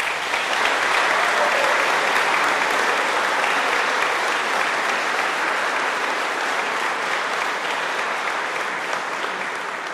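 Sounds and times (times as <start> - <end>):
large crowd applauding: 0.0 - 9.9.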